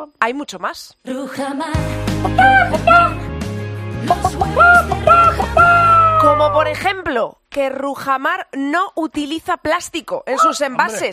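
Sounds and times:
speech: 0:00.0 - 0:03.3, 0:06.4 - 0:11.1
steady musical backing: 0:01.1 - 0:07.1
free-range laying hens clucking at an egg producer in Spain: 0:02.2 - 0:03.2, 0:04.1 - 0:06.3.

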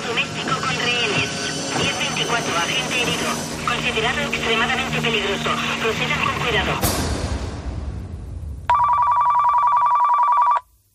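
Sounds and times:
low noise rush: 0:00.0 - 0:09.0
speech: 0:03.8 - 0:07.0
mobile phone ringing with a loud electronic trill: 0:08.7 - 0:10.7.

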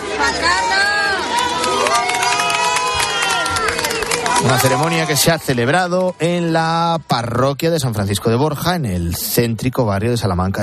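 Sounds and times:
crowd at a wedding in Madrid cheering and shouting: 0:00.0 - 0:08.8
speech: 0:00.2 - 0:00.9, 0:04.4 - 0:10.6
scattered clapping at a church entrance in Madrid: 0:01.2 - 0:06.9.

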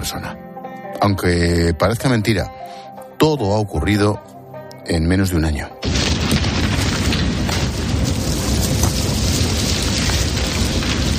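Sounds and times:
speech: 0:00.0 - 0:06.0
wildfire crackling and popping: 0:05.8 - 0:11.1
wildfire roaring: 0:05.8 - 0:11.1.

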